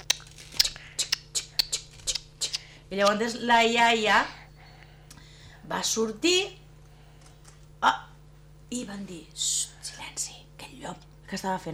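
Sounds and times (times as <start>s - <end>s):
scissors snipping: 0.0s - 3.2s
speech: 2.9s - 4.4s, 5.7s - 6.6s, 7.8s - 8.0s, 8.7s - 9.6s, 10.8s - 11.7s.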